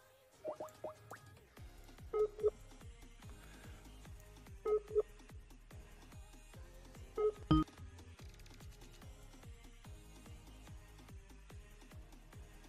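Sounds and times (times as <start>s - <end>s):
touch-tone DTMF dialing of a telephone number: 2.2s - 2.5s, 4.7s - 5.0s, 7.2s - 7.6s.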